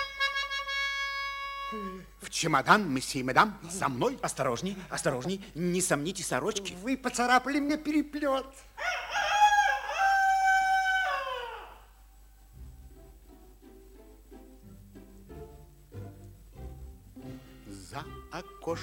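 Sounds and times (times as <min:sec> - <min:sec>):
low rhythmic sounds: 0:00.0 - 0:08.7, 0:11.9 - 0:18.8
speech: 0:01.7 - 0:09.0
rooster crowing: 0:08.8 - 0:12.0.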